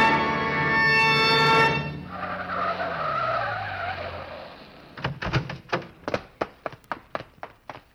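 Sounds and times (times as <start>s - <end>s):
car tires squealing while skidding under hard braking: 0.0s - 5.0s
sharp clicks and taps: 5.0s - 7.9s.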